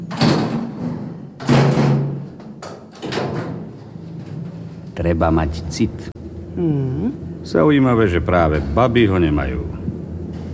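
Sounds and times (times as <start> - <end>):
door slamming shut with a heavy thud: 0.1 - 2.3
speech: 5.0 - 9.8.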